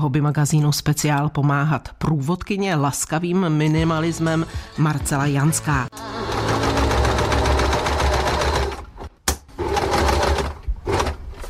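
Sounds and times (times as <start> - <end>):
speech: 0.0 - 6.3
sewing machine running: 5.9 - 11.2.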